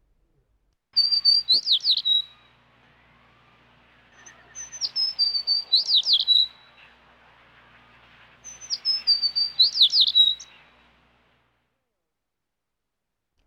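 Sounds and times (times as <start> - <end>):
sparrow chirping in bright high tweets: 1.0 - 3.1, 4.1 - 10.9
speech: 1.5 - 1.8.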